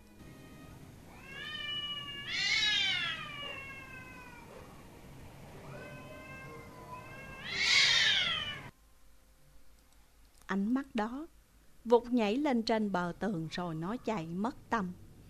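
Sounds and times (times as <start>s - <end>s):
cat meowing: 0.3s - 4.9s, 5.6s - 8.7s
speech: 10.5s - 15.0s.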